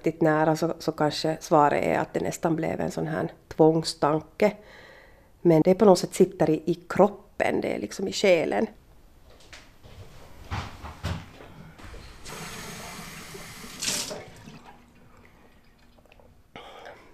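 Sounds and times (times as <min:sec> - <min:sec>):
speech: 0:00.0 - 0:04.8, 0:05.4 - 0:08.8
water running from a tap into a glass: 0:12.2 - 0:16.4.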